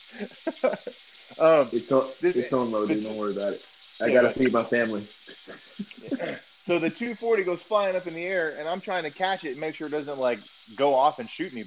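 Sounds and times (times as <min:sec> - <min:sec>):
speech: 0:00.0 - 0:11.6
steak sizzling in a pan: 0:00.0 - 0:11.6
laughter: 0:00.1 - 0:10.4
voices: 0:00.2 - 0:11.6.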